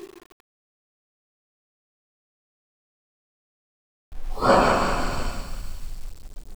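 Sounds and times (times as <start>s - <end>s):
angry phantom voice: 4.4s - 5.7s.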